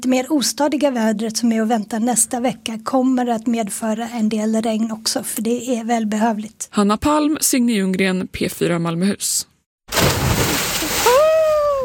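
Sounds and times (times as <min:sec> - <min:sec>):
speech: 0:00.0 - 0:10.2
person plunging into cold sea water to bathe: 0:09.9 - 0:11.8
high-pitched vocal squeal: 0:11.0 - 0:11.8.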